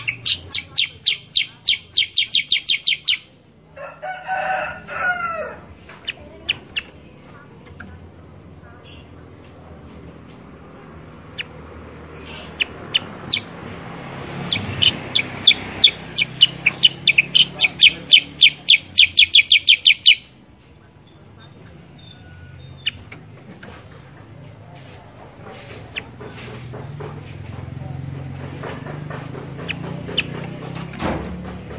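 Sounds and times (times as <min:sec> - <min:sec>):
sooty-headed bulbul singing energetic training song: 0:00.0 - 0:03.4, 0:05.9 - 0:09.3, 0:10.9 - 0:23.8
low background noise: 0:00.0 - 0:31.7.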